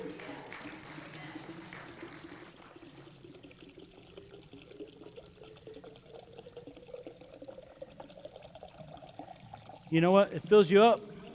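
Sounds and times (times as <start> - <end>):
water pouring into a container until it overflows: 0.0 - 11.3
speech: 9.9 - 11.1.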